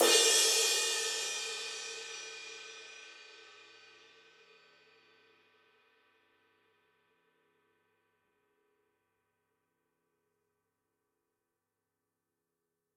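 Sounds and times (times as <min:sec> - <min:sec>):
ride cymbal on a drum kit: 0:00.0 - 0:03.2.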